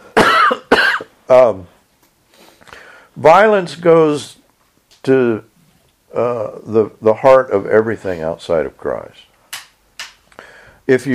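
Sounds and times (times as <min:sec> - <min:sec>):
harsh coughs: 0:00.0 - 0:01.2
speech: 0:01.3 - 0:01.7, 0:03.2 - 0:04.4, 0:05.0 - 0:05.5, 0:06.1 - 0:09.3, 0:10.9 - 0:11.1.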